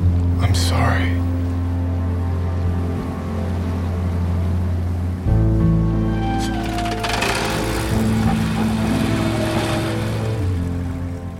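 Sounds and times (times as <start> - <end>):
motorboat engine droning: 0.0 - 11.3
water wash around a motorboat: 6.0 - 11.3.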